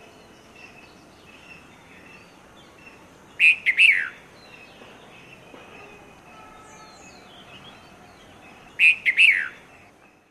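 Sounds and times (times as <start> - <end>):
faint background noise: 0.0 - 10.2
red-vented bulbul song of bubbly chirpy notes: 3.4 - 4.2, 8.8 - 9.9.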